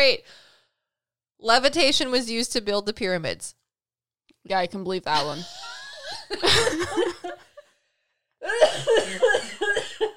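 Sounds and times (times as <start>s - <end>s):
speech: 0.0s - 0.4s, 1.4s - 3.6s, 4.4s - 7.4s, 8.4s - 10.1s
choking coughing fit: 8.4s - 10.1s.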